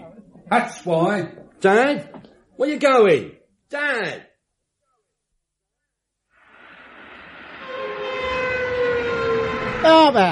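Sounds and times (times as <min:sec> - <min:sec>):
speech: 0:00.5 - 0:04.3, 0:09.8 - 0:10.2
train rumbling in at a railway station with roar of wheels and engine: 0:06.8 - 0:10.2
long loud train horn blast: 0:07.5 - 0:10.2.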